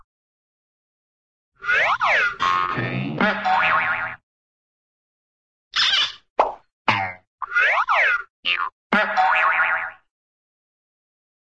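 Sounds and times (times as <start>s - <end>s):
cartoon boing: 1.7s - 4.2s, 6.9s - 10.1s.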